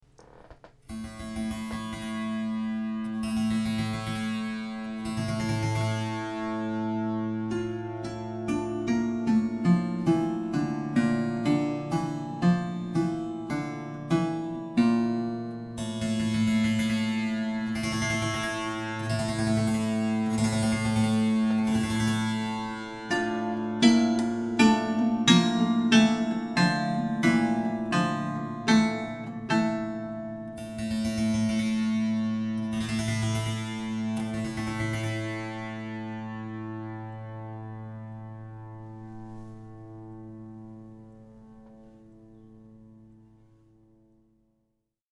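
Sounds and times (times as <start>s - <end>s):
monochord sound example with koto: 0.2s - 43.2s.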